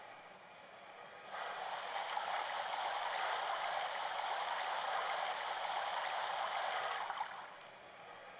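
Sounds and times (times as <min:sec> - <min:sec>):
boat moving through water: 0:01.6 - 0:07.6.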